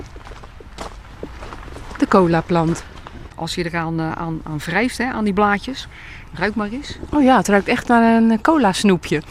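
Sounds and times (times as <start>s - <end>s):
footsteps crunching outdoors at a walking pace: 0.0s - 3.8s, 6.4s - 8.5s
low rumble: 0.0s - 9.2s
speech: 2.1s - 9.2s.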